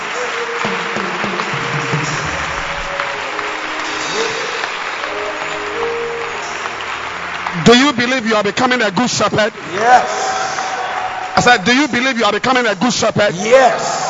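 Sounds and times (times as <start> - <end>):
audience clapping at a prayer gathering: 0.0 - 14.0
speech: 7.7 - 10.4, 11.4 - 14.0.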